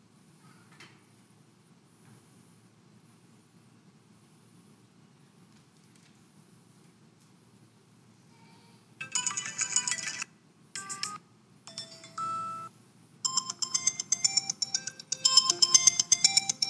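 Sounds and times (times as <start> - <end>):
melodic electronic phone ringtone: 9.0 - 16.6.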